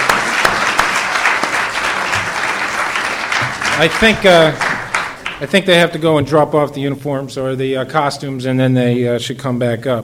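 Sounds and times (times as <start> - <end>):
large church audience applauding after a Christmas program: 0.0 - 5.6
speech: 3.8 - 4.7, 5.4 - 10.0.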